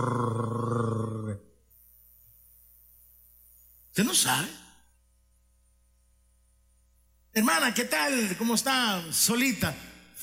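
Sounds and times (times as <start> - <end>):
Rottweiler dog growling deep and rumbling: 0.0 - 1.4
speech: 4.0 - 4.6, 7.4 - 10.2.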